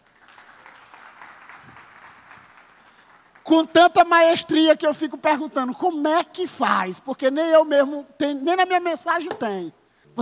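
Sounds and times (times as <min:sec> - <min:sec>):
audience applauding: 0:00.0 - 0:03.5
speech: 0:03.5 - 0:10.2.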